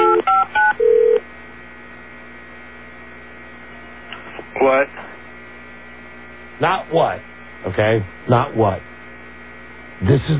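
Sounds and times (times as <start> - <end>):
telephone keypad two-tone beeps: 0.0 - 1.2
speech: 6.6 - 8.9, 10.0 - 10.3.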